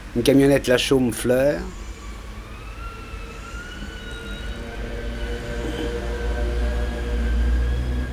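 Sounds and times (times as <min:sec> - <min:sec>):
heavy low rumble of passing street traffic: 0:00.0 - 0:08.1
speech: 0:00.1 - 0:01.8
faint emergency siren wailing: 0:01.7 - 0:08.1.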